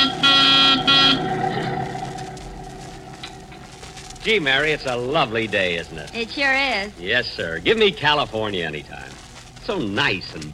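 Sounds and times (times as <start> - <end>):
car horn honking: 0.0 - 1.6
speech: 4.2 - 10.5.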